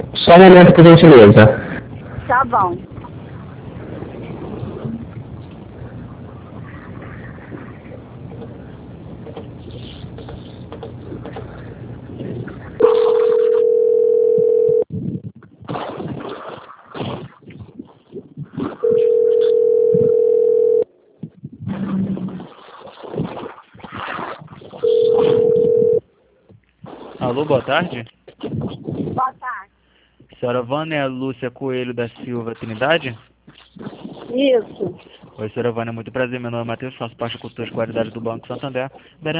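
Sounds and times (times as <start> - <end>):
speech: 0.0 - 1.7, 2.3 - 2.9, 27.4 - 28.2, 30.4 - 33.3, 34.3 - 39.3
telephone line crackle and noise: 0.0 - 29.7, 31.3 - 39.3
telephone line tones while a call is transferred: 12.8 - 14.9, 18.8 - 20.9, 24.8 - 26.0.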